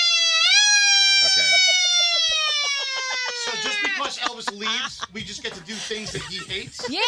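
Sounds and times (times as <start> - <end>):
person vocally imitating a siren: 0.0 - 4.7
laughter: 1.0 - 7.0
speech: 3.6 - 7.0.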